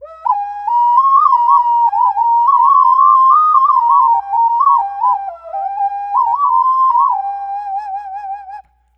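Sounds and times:
double ocarina with clean flute tones: 0.0 - 8.9.

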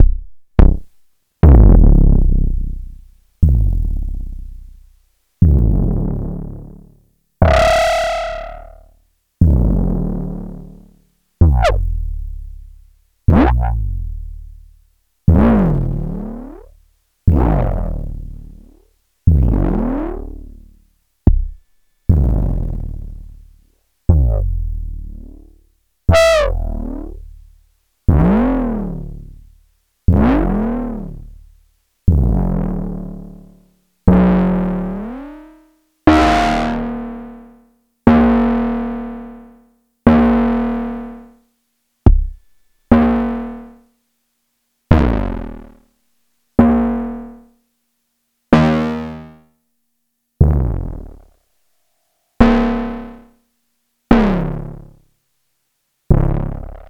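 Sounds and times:
distorted kick drum with feedback: 0.0 - 6.8, 7.4 - 10.7, 11.4 - 14.6, 15.3 - 16.7, 17.3 - 23.4, 24.1 - 25.5, 26.1 - 27.5, 28.1 - 29.4, 30.1 - 31.4, 32.1 - 37.5, 38.1 - 39.5, 40.1 - 41.3, 42.0 - 43.8, 44.9 - 45.8, 46.6 - 47.4, 50.4 - 51.4, 52.4 - 53.2, 54.1 - 55.0, 56.1 - 56.8.

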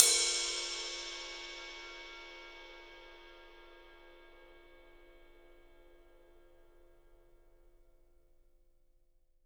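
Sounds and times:
ride cymbal: 0.0 - 5.1.

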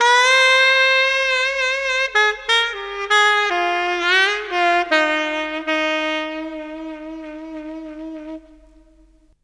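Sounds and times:
drum and bass saxophone lick: 0.0 - 9.4.

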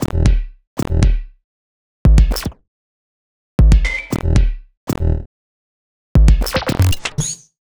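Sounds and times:
percussive bass: 0.0 - 1.3, 2.1 - 2.6, 3.6 - 5.3, 6.2 - 7.0.

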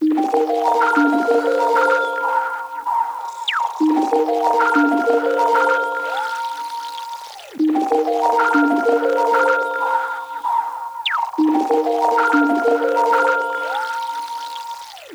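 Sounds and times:
keytracked melody loop: 0.0 - 15.1.

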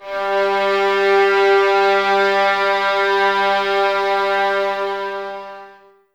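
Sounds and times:
violins in a light string ensemble playing G3: 0.0 - 5.9.

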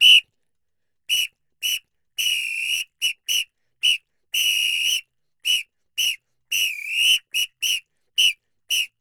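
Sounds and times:
murga whistle: 0.0 - 0.3, 1.1 - 8.9.

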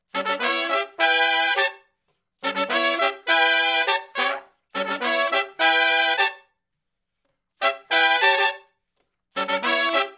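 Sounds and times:
horn section playing R&B riff in harmony: 0.1 - 1.8, 2.4 - 6.4, 7.6 - 8.6, 9.4 - 10.1.

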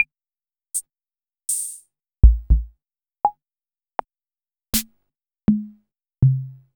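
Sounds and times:
Acetone Rhythm Ace FR6 drum machine rhythm: 1.5 - 2.7.

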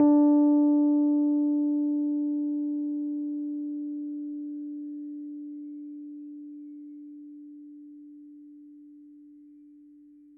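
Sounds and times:
Rhodes Mark II 88-key electric piano playing D4: 0.0 - 3.6.

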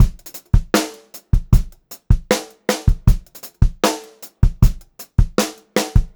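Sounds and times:
funk groove drum loop: 0.0 - 6.1.

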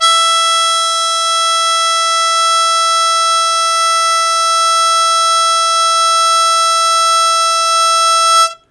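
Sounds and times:
harmonica E2 note with loud attack and sustain: 0.0 - 8.6.

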